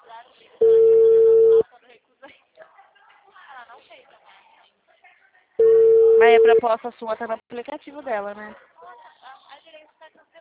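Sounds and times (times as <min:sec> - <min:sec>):
people talking quietly: 0:00.0 - 0:10.3
WhatsApp phone call ringing tone: 0:00.6 - 0:01.6, 0:05.6 - 0:06.6
speech: 0:06.3 - 0:08.7.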